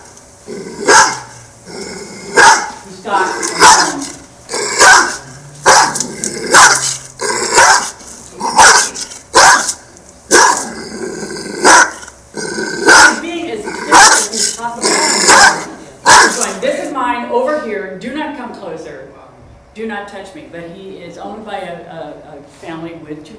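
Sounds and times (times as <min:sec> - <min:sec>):
dog growling and snarling: 0:00.4 - 0:16.6
speech: 0:00.5 - 0:00.8, 0:03.0 - 0:04.1, 0:21.4 - 0:23.3
dog barking: 0:00.8 - 0:01.4, 0:02.4 - 0:02.8, 0:03.5 - 0:04.1, 0:04.8 - 0:06.9, 0:07.5 - 0:10.7, 0:11.6 - 0:12.0, 0:12.9 - 0:13.2, 0:13.9 - 0:14.3, 0:15.2 - 0:16.5.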